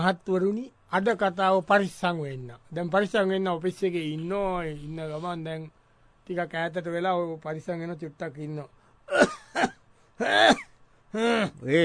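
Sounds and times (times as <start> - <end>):
speech: 0.0 - 11.8
chesty phlegm-laden coughing: 9.1 - 11.6.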